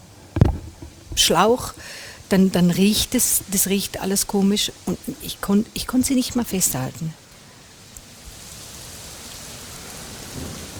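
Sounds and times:
heavy rain hissing in a storm: 0.0s - 10.7s
brief thumps: 0.3s - 2.4s
speech: 1.2s - 7.2s.

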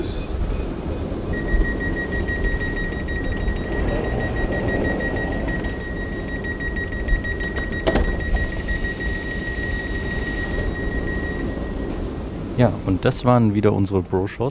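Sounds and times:
train pulling away from a station: 0.0s - 13.0s
speech: 12.6s - 14.5s.

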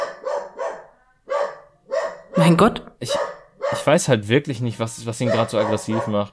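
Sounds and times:
dog barking: 0.0s - 4.0s, 5.2s - 6.3s
speech: 2.4s - 6.3s.

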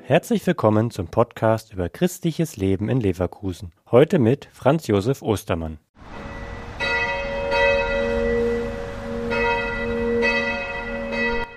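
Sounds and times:
speech: 0.1s - 6.3s
bells of a Catholic church ringing in Leverkusen: 6.0s - 11.5s.

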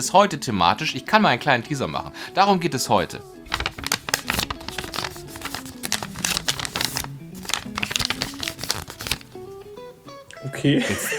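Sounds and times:
speech: 0.0s - 3.4s, 10.5s - 11.1s
sheet of paper being folded: 3.5s - 9.9s
laughter: 10.5s - 11.1s.

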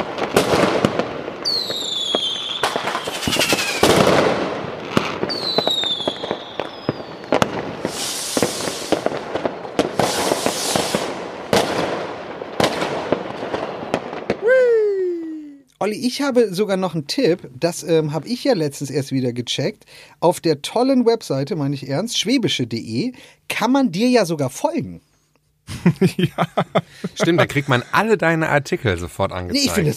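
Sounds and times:
whistling rockets streaking upward: 0.0s - 14.7s
fireworks and firecrackers bursting with sharp cracks and booming blasts: 0.0s - 14.8s
speech: 15.9s - 25.1s, 25.7s - 29.9s
laughter: 25.7s - 28.2s.

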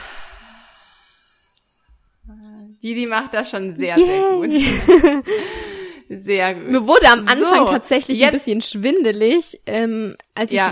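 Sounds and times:
breathy exhale through the mouth during a breathing exercise: 0.0s - 1.6s
speech: 2.3s - 10.7s
laughter: 4.6s - 5.3s.

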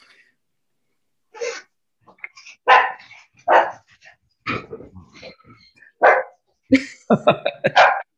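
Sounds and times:
dog barking: 2.6s - 3.8s, 6.0s - 6.4s, 7.7s - 8.1s
speech: 6.7s - 7.4s
laughter: 6.7s - 7.9s.

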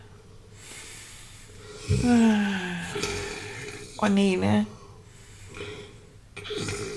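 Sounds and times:
performer voicing a robot character snoring: 1.7s - 4.0s, 5.5s - 6.9s
speech: 1.9s - 3.1s, 4.0s - 4.8s.

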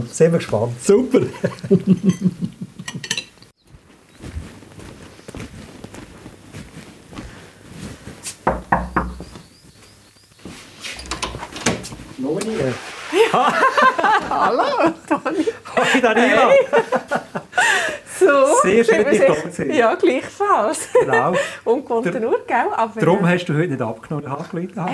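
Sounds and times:
speech: 0.0s - 2.6s, 14.4s - 24.9s
laughter: 1.1s - 3.0s, 13.1s - 19.7s, 20.7s - 21.6s
knocking on a door: 8.4s - 9.4s.

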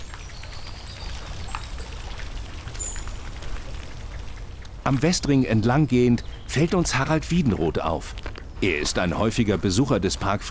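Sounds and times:
fountain water splashing: 0.0s - 8.0s
faint birds chirping: 0.0s - 10.0s
speech: 4.8s - 10.4s.

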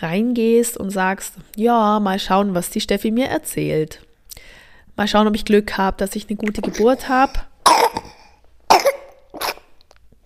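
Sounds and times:
speech: 0.0s - 7.9s
baby coughing: 6.6s - 9.8s.

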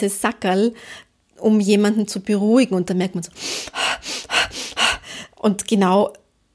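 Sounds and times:
speech: 0.0s - 4.2s, 5.4s - 6.2s
quick breathing in and out in a breathing demonstration: 3.4s - 5.4s.

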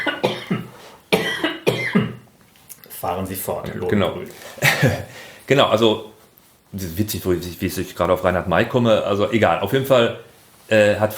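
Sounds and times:
person coughing in harsh bursts: 0.0s - 2.3s, 4.6s - 5.2s
speech: 3.0s - 6.1s, 6.7s - 11.1s.

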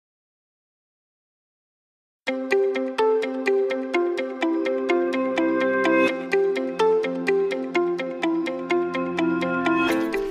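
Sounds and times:
bright instrumental podcast outro tune of plucked bell-like notes: 2.3s - 10.2s.

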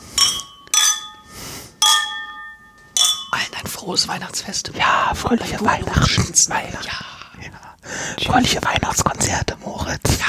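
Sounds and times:
glasses clinking in a New Year's toast: 0.0s - 3.8s
speech: 3.8s - 10.2s.

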